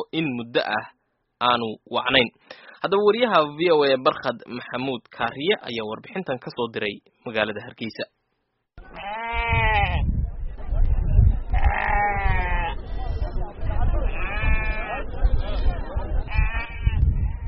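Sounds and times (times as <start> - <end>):
speech: 0.1 - 8.2
sheep and goats bleating at a busy livestock sale yard: 8.8 - 10.1, 11.5 - 12.8, 14.1 - 15.1, 16.2 - 17.4
constant rumble of animal movement: 8.8 - 15.0.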